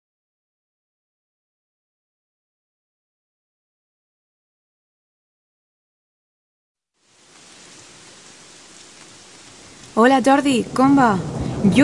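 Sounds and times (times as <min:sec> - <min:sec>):
heavy rain falling: 0:07.0 - 0:11.8
speech: 0:10.0 - 0:11.8.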